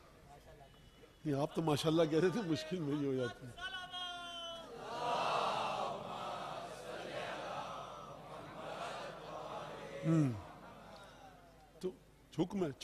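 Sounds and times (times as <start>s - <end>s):
speech: 1.2s - 3.7s, 10.0s - 10.5s, 11.8s - 12.8s
large crowd chanting religious slogans in unison: 4.7s - 11.4s.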